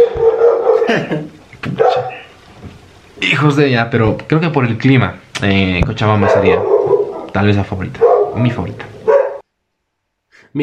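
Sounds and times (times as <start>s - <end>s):
dogs barking and yipping: 0.0s - 1.0s, 1.7s - 2.3s, 6.1s - 9.4s
speech: 0.9s - 2.1s, 3.2s - 8.9s, 10.5s - 10.6s.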